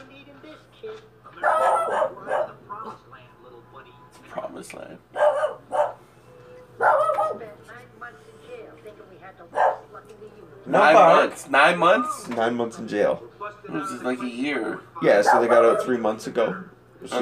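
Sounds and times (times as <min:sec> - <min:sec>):
dog barking in short sharp bursts: 0:01.4 - 0:02.6, 0:05.1 - 0:06.0, 0:06.8 - 0:07.5, 0:09.5 - 0:09.9, 0:15.2 - 0:16.0
speech: 0:10.7 - 0:17.2.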